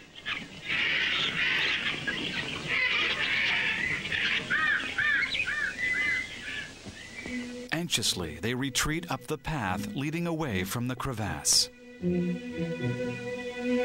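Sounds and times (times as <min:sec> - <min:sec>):
startled jungle birds squawking: 0:00.0 - 0:08.8
speech: 0:07.9 - 0:13.8.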